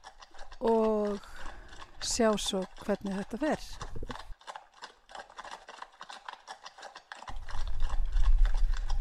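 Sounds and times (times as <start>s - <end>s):
many horse hooves clip-clopping as horses arrive: 0.0s - 8.9s
speech: 0.6s - 1.3s, 2.0s - 4.0s.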